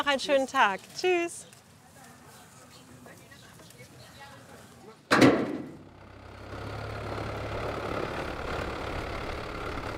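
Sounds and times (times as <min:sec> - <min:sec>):
speech: 0:00.1 - 0:01.5
sharp knock or thud: 0:05.1 - 0:05.8
French-built oyster fishing boat engine starting and idling: 0:05.8 - 0:09.9.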